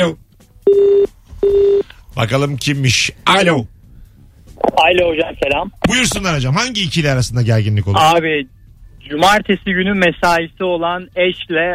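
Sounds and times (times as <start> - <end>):
speech: 0.0 - 1.6, 2.2 - 3.7, 4.6 - 11.7
telephone connecting tone beeps: 0.7 - 1.9.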